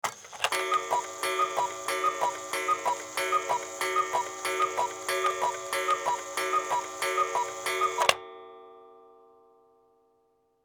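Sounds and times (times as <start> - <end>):
cuckoo clock: 0.0 - 8.2.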